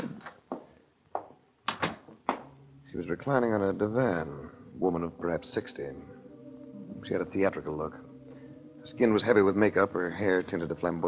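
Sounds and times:
apartment door opening and closing with wooden thuds and clunks: 1.7s - 2.5s
speech: 2.9s - 6.2s, 7.0s - 8.0s, 8.8s - 11.0s.

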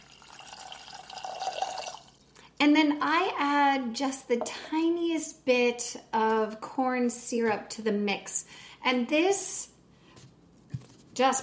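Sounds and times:
water pouring into a pot with granulated sugar: 0.0s - 2.3s
speech: 2.6s - 9.7s, 11.2s - 11.4s.

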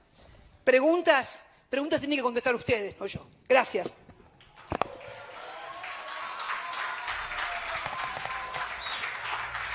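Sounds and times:
speech: 0.7s - 4.0s
audience applause: 4.5s - 9.7s
sharp louder claps: 5.8s - 9.7s.

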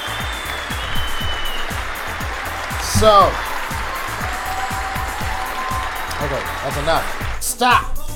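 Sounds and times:
crowd applauding: 0.0s - 7.9s
speech: 3.0s - 3.5s, 6.3s - 7.9s.

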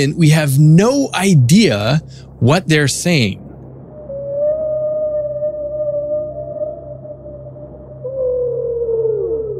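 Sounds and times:
speech: 0.0s - 3.4s
steady low hum: 0.0s - 9.5s
whales vocalizing in long tonal moans: 4.0s - 9.5s.

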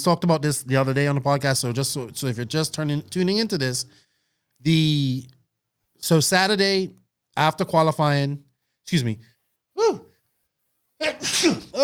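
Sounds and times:
speech: 0.0s - 4.0s, 4.6s - 5.4s, 6.0s - 10.1s, 11.0s - 11.8s
person sneezing: 11.0s - 11.8s.

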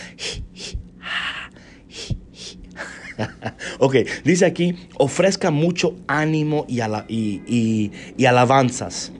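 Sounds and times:
deep breathing demonstrating labor breathing: 0.0s - 2.9s
laughter: 2.8s - 3.7s
speech: 3.2s - 9.1s.

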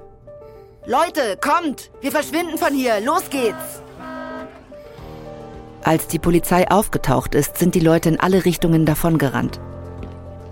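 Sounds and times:
speech: 0.8s - 3.8s, 5.8s - 9.8s
school bus horn honking: 3.0s - 5.2s.

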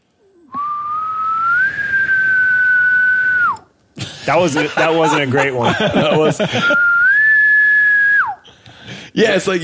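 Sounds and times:
person whistling imitation of distant bull elk bugle: 0.4s - 3.7s, 6.7s - 8.5s
laughter: 4.0s - 7.0s
speech: 4.3s - 6.9s, 9.2s - 9.6s.

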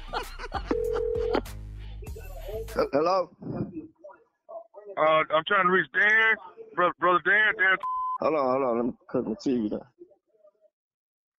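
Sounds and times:
laughter: 0.0s - 1.6s
steady electronic telephone tone: 0.7s - 1.4s
speech: 2.8s - 3.6s, 5.0s - 9.9s.

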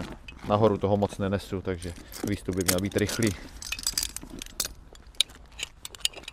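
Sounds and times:
speech: 0.5s - 3.6s
light metallic rattling and jingling: 1.8s - 6.3s
helmet chin buckle clicking shut: 1.9s - 6.3s.

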